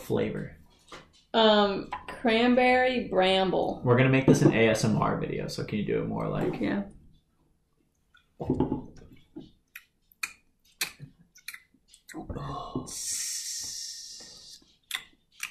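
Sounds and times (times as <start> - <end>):
speech: 0.1 - 0.6, 1.3 - 7.0, 8.4 - 8.9, 12.2 - 13.4
irregular wet mouth clicks and smacks: 8.0 - 15.4
person chewing with wet mouth noises: 9.2 - 12.8, 14.4 - 15.4.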